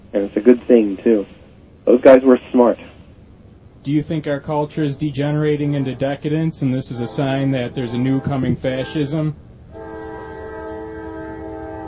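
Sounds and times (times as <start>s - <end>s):
speech: 0.1s - 2.9s, 3.8s - 9.8s
passing train rumble: 3.3s - 11.8s
train horn blaring: 5.6s - 11.8s.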